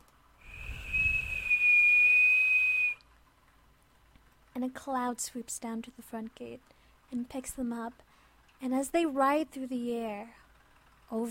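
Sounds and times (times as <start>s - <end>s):
person whistling on one high pitch: 0.4s - 3.0s
speech: 4.6s - 10.4s, 11.1s - 11.2s.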